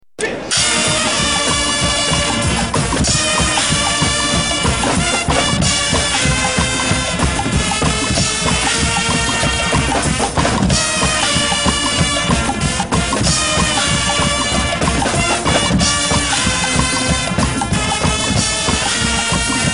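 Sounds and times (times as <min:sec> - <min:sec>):
guggenmusik band playing: 0:00.2 - 0:19.7.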